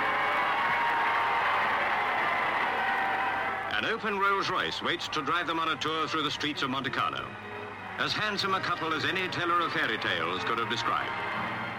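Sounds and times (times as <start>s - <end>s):
large crowd cheering and applauding outside a cathedral: 0.0s - 4.9s, 8.8s - 11.7s
speech: 3.8s - 11.4s.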